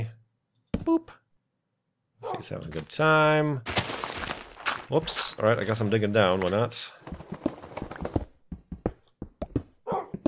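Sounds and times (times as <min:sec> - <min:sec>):
speech: 0:00.8 - 0:01.2, 0:02.2 - 0:03.8, 0:04.9 - 0:07.2
dog woofing with short gruff barks: 0:09.9 - 0:10.2.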